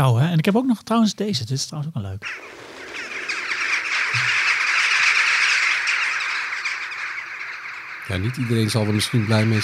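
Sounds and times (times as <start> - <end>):
speech: 0.0 - 2.6, 8.1 - 9.6
large flock of jackdaws calling: 2.2 - 9.6.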